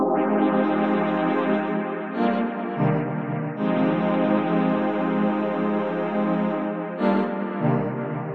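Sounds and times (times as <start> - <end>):
warm stringy synth pad melody: 0.2 - 8.3.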